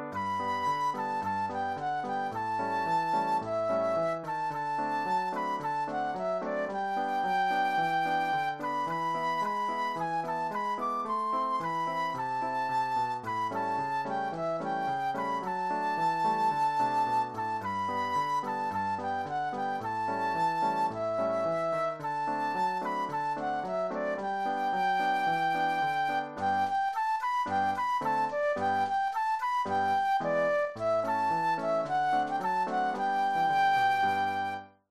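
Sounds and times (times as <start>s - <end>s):
patriotic flute solo: 0.1s - 34.8s.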